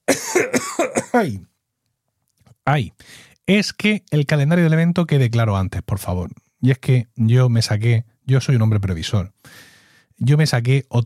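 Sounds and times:
man coughing: 0:00.0 - 0:01.5
speech: 0:00.4 - 0:01.5, 0:02.6 - 0:11.0.

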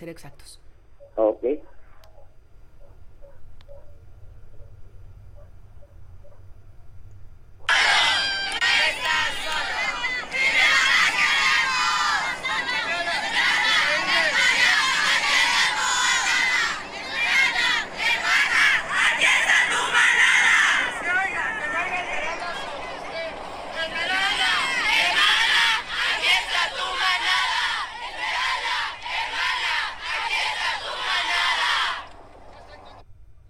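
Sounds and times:
speech: 0:00.0 - 0:00.6, 0:01.2 - 0:01.7
crowd of women shouting and chanting at a protest march: 0:07.7 - 0:32.9.

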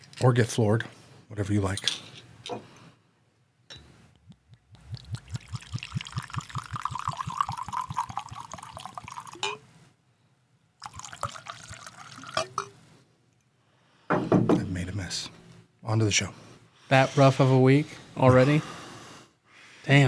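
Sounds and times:
speech: 0:00.2 - 0:02.7, 0:16.0 - 0:18.8, 0:19.9 - 0:20.0
Japanese whiskey glugging from a bottle into a glass: 0:04.8 - 0:09.6, 0:10.8 - 0:12.7.

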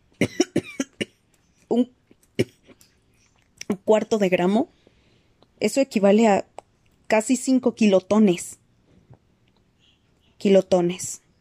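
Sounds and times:
harsh dry coughing: 0:00.2 - 0:01.2
speech: 0:01.7 - 0:02.5, 0:03.9 - 0:04.8, 0:05.6 - 0:06.5, 0:07.1 - 0:08.6, 0:10.4 - 0:11.2.

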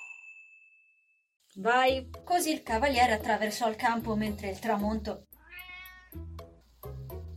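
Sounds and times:
speech: 0:01.6 - 0:05.3
cat meowing: 0:05.3 - 0:06.3.

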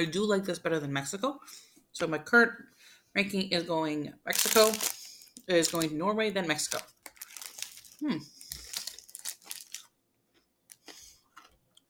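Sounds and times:
speech: 0:00.0 - 0:07.0, 0:08.0 - 0:08.4
chewing a toffee caramel bar covered in chocolate: 0:04.3 - 0:05.9, 0:06.6 - 0:11.8
wrapper crinkling: 0:04.3 - 0:10.0.

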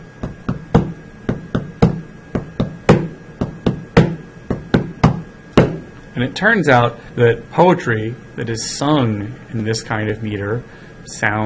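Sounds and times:
tapping out the rhythm of dactylic hexameter: 0:00.0 - 0:06.0
speech: 0:06.2 - 0:11.4.

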